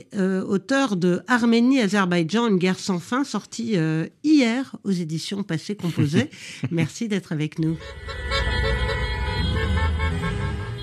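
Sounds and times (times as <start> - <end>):
speech: 0.0 - 8.6
laughter: 5.8 - 7.0
many car horns honking in celebration: 7.8 - 10.8
street traffic rumble: 7.8 - 10.8.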